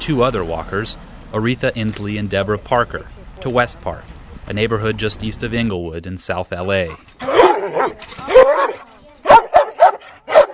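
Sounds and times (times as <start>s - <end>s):
speech: 0.0s - 8.7s
fenced-in dog barking ferociously: 7.2s - 10.5s.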